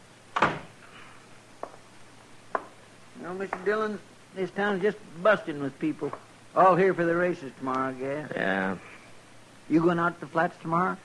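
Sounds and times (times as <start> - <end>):
door shutting with a solid thud: 0.3 - 0.8
speech: 3.2 - 8.9, 9.7 - 11.0.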